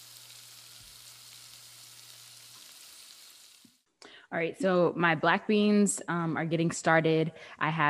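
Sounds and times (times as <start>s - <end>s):
onions frying in olive oil in a pan: 0.0s - 3.8s
speech: 4.3s - 7.8s.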